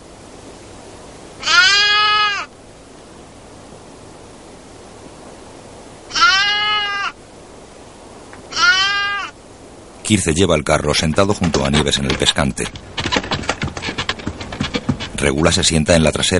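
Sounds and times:
steady soft hiss: 0.0s - 16.3s
white lambs bleating in a sheepfold: 1.4s - 2.5s, 6.1s - 7.2s, 8.5s - 9.4s
speech: 10.1s - 13.0s, 15.2s - 16.3s.

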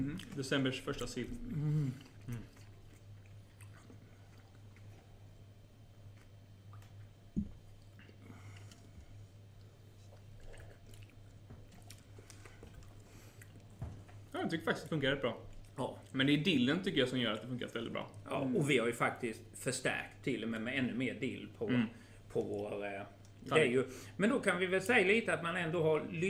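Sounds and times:
speech: 0.0s - 2.6s, 14.5s - 26.2s
person chewing pickled herring: 0.0s - 14.3s
low steady hum: 0.0s - 26.2s.

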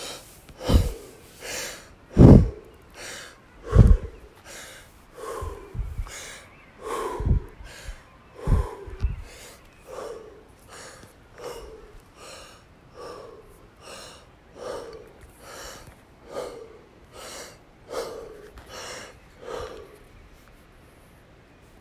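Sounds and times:
forceful rhythmic deep breathing: 0.0s - 20.2s.

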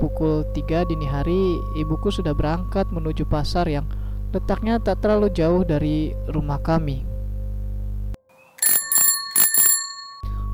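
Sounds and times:
speech: 0.0s - 7.1s
low steady hum: 0.0s - 8.2s
bicycle bell ringing: 8.6s - 10.4s.

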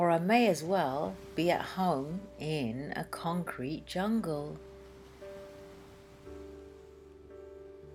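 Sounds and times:
speech: 0.0s - 4.7s
sea surf washing at the seaside in England on a crisp cool day: 0.0s - 7.9s.

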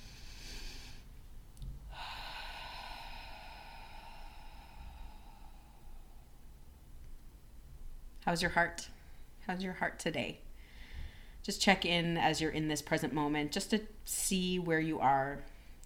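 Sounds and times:
slow deep breathing in and out during a guided breathing exercise: 0.0s - 6.8s, 10.5s - 11.4s
speech: 8.3s - 10.4s, 11.4s - 15.5s.

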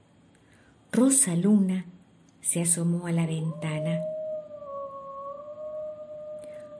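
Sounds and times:
speech: 1.0s - 4.1s
wolves howling: 3.2s - 6.7s.

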